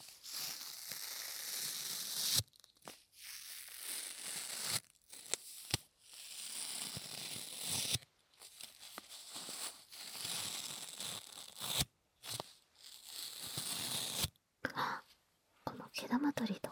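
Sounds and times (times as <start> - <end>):
packing tape pressed down and peeled off: 0.2 - 14.3
speech: 16.1 - 16.6.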